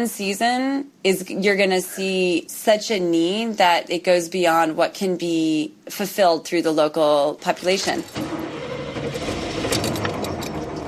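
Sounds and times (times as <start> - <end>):
speech: 0.0 - 8.4
car engine starting up and rumbling: 7.8 - 10.8.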